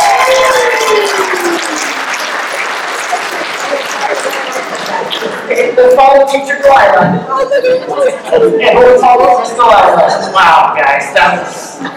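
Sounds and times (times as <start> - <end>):
crowd applauding: 0.0 - 5.8
speech: 5.8 - 11.9.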